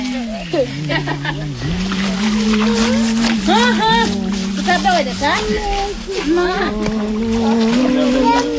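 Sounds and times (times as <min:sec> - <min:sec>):
laughter: 0:00.0 - 0:08.5
several voices talking and calling out, including child-like voices: 0:00.0 - 0:08.5
water splashing during laundry and washing children: 0:00.0 - 0:08.5.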